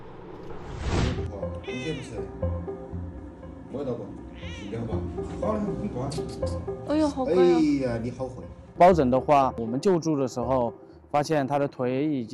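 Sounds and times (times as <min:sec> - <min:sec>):
human voices murmuring: 0:01.5 - 0:02.4, 0:03.6 - 0:10.5
ragdoll cat meowing: 0:01.6 - 0:02.3, 0:04.3 - 0:04.9
speech: 0:01.8 - 0:02.5, 0:03.8 - 0:12.3.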